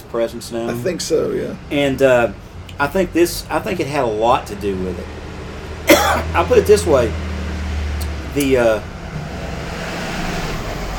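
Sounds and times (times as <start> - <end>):
delivery truck engine idling and rolling past outside: 0.0 - 10.9
speech: 0.1 - 5.2, 6.1 - 7.3, 8.4 - 8.9
descending whine: 4.5 - 10.9.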